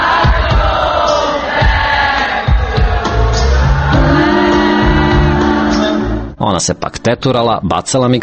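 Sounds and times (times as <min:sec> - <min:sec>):
large concert crowd singing and shouting: 0:00.0 - 0:06.3
speech: 0:06.6 - 0:08.2.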